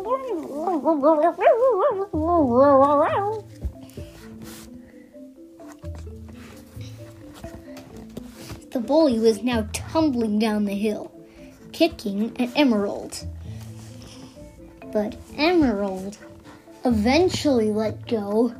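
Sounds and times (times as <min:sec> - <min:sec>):
wolf yipping like a laughing cackle: 0:00.0 - 0:03.4
speech: 0:00.8 - 0:03.4, 0:08.9 - 0:11.1, 0:11.8 - 0:13.4, 0:14.9 - 0:18.5.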